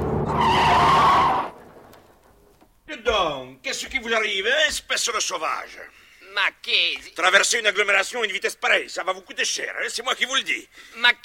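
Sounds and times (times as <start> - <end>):
speeding car braking hard with tyres screeching: 0.0 - 2.4
speech: 3.7 - 11.2.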